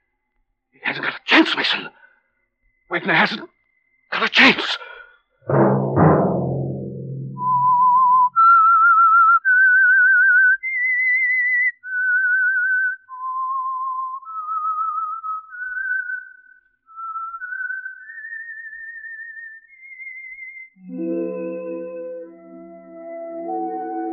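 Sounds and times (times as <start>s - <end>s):
speech: 1.4s - 2.0s, 2.9s - 5.7s
orchestral music: 5.5s - 7.9s, 20.8s - 24.1s
solo whistled melody: 7.1s - 24.1s.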